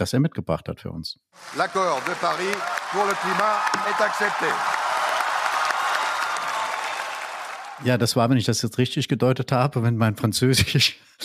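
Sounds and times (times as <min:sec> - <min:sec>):
speech: 0:00.0 - 0:04.8, 0:07.8 - 0:11.2
faint cheering: 0:01.4 - 0:08.0
large crowd applauding at a climate conference: 0:01.4 - 0:08.0.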